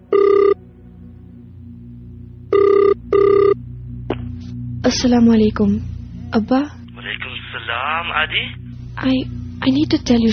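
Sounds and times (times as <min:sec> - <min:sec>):
phone ring tone after dialing: 0:00.0 - 0:00.6, 0:02.5 - 0:03.6
low hum: 0:00.0 - 0:10.3
speech: 0:04.9 - 0:06.8, 0:07.9 - 0:10.3.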